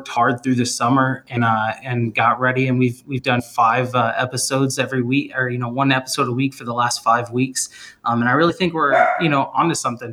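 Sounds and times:
speech: 0.0s - 10.1s
male dog barking: 8.9s - 9.3s.

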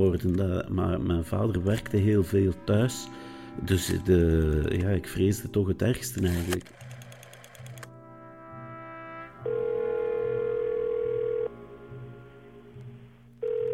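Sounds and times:
speech: 0.0s - 6.9s
ringing tone of an outgoing telephone call: 9.4s - 11.6s, 13.4s - 13.7s.

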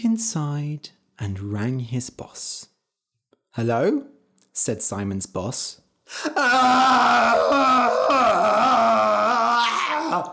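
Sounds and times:
speech: 0.1s - 2.7s, 3.6s - 9.0s, 9.6s - 10.3s
man screaming: 6.2s - 10.3s.

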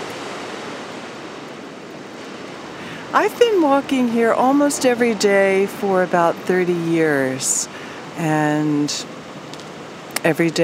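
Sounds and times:
Pacific Ocean surf at dawn breaking on shore along Westcliff Drive: 0.0s - 10.6s
speech: 3.1s - 9.1s, 10.2s - 10.6s.

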